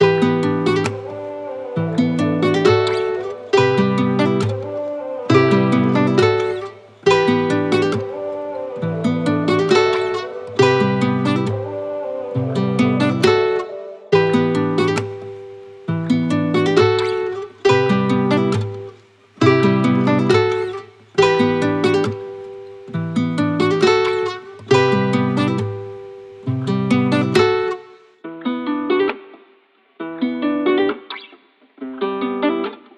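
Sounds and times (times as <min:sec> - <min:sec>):
guitar loop at 136 BPM in E minor: 0:00.0 - 0:32.9.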